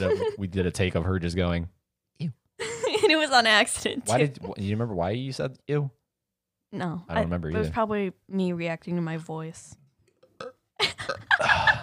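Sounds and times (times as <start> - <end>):
speech: 0.0 - 2.4, 3.1 - 6.0, 6.7 - 9.8
person burping loudly: 10.2 - 11.8.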